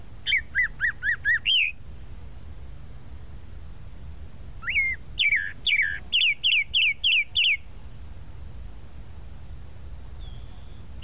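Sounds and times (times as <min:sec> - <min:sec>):
Tropical mockingbird song with rising whistle and descending chirps: 0:00.2 - 0:01.8, 0:04.6 - 0:07.7, 0:09.8 - 0:11.0.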